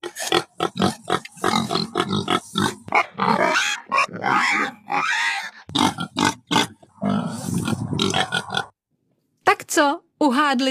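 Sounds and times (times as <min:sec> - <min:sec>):
pig grunting and oinking: 0:00.0 - 0:08.8
speech: 0:10.5 - 0:10.7.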